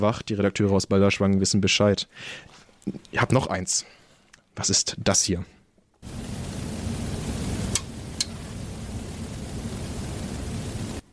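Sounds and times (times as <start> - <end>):
speech: 0.0 - 4.0, 4.6 - 6.2
broadband radio static hissing: 6.0 - 11.1.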